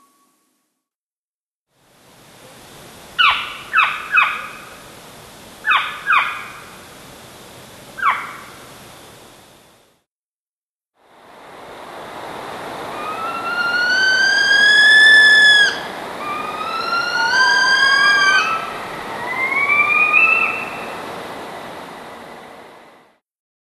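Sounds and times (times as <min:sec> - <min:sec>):
Northern saw-whet owl calling: 0:03.2 - 0:04.7, 0:05.7 - 0:06.8, 0:08.0 - 0:08.6, 0:13.0 - 0:21.0.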